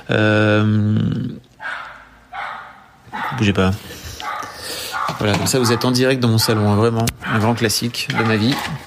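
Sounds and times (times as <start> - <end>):
speech: 0.1 - 1.5, 3.4 - 4.0, 5.1 - 8.8
neighbour's dog barking and yapping: 1.6 - 3.6, 4.2 - 8.8.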